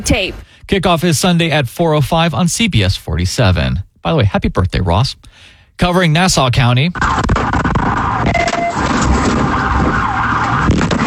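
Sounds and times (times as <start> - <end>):
speech: 0.0 - 7.6
police sirens wailing during a vehicle pursuit in Fernandina Beach: 7.8 - 11.0.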